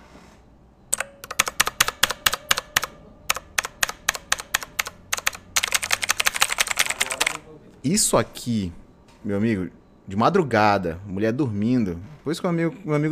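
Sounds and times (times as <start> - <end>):
mechanical switches of a Redragon Dark Avenger keyboard clicking while typing: 0.9 - 7.4
speech: 7.8 - 13.1.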